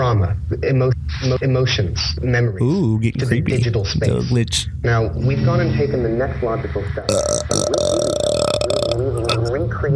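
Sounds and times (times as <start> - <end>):
speech: 0.3 - 8.1
long loud croaking burp: 7.1 - 9.5.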